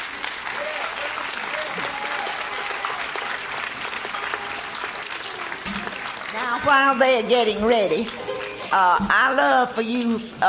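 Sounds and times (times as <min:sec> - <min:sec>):
large audience applause welcoming a family band at a folk festival: 0:00.0 - 0:06.9
faint cheering voices: 0:00.4 - 0:06.5
speech: 0:06.6 - 0:10.4.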